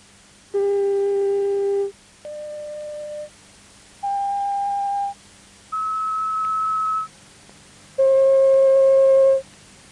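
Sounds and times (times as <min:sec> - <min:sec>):
pure sine tones at different volumes: 0:00.6 - 0:03.3, 0:04.0 - 0:07.1, 0:08.0 - 0:09.4.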